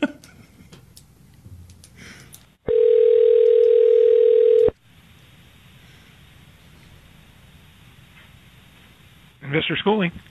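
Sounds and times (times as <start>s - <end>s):
steady loud telephone tone before a recorded phone call: 2.7s - 4.8s
speech: 9.6s - 10.2s.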